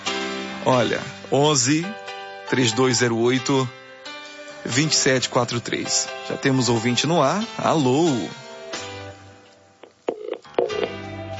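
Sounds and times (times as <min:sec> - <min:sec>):
speech: 0:00.6 - 0:03.8, 0:04.6 - 0:08.4
telephone line clicks after a dropped call: 0:09.8 - 0:11.0
telephone line electronic tones after a dropped call: 0:10.1 - 0:11.0.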